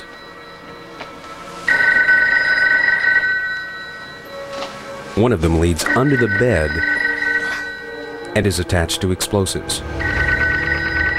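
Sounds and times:
telephone bell ringing: 1.7 - 4.7, 5.8 - 8.5, 10.0 - 11.1
speech: 5.2 - 7.0, 8.4 - 10.1.

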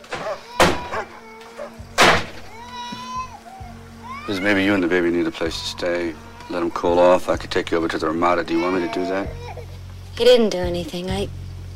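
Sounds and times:
door forcefully smashed open with loud sharp bangs: 0.0 - 1.1, 2.0 - 2.5
speech: 4.3 - 9.5, 10.2 - 11.4.

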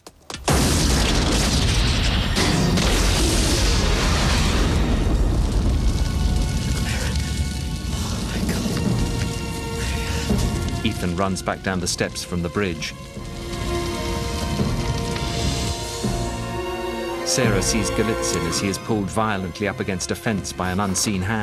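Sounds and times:
car explosion: 0.0 - 16.6
falling debris crackling after a car explosion: 0.0 - 21.4
speech: 11.0 - 13.1, 17.3 - 21.4.

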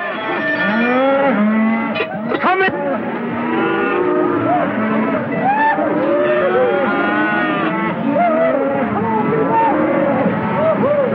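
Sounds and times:
several cattle mooing together: 0.0 - 2.2, 3.0 - 10.6.

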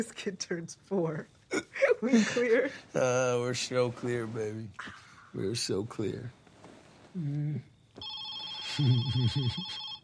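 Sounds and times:
speech: 0.0 - 6.4, 7.1 - 8.1, 8.8 - 9.8
telephone ringing with a bright electronic tone: 8.0 - 10.0.

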